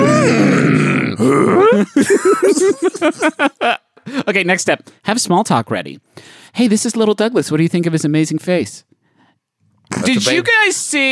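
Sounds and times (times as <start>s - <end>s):
baby groaning and grunting: 0.0s - 2.0s
laughter: 1.7s - 4.2s
speech: 2.6s - 9.0s, 9.9s - 11.0s.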